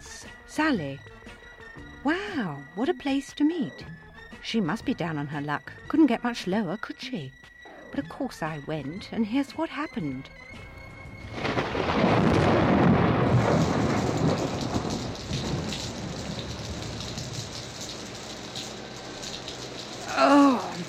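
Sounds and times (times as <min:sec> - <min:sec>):
speech: 0:00.6 - 0:01.2, 0:02.0 - 0:10.7
deep rumble of thunder: 0:10.8 - 0:20.8
heavy rain falling: 0:11.1 - 0:20.8.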